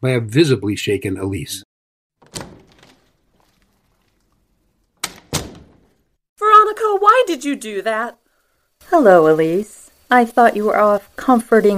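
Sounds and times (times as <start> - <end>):
speech: 0.0 - 1.6, 7.0 - 8.2, 8.8 - 11.7
side door from a boardroom into a hallway shutting: 2.2 - 3.8, 5.0 - 6.1
side door from a boardroom into a hallway opening: 2.2 - 6.1.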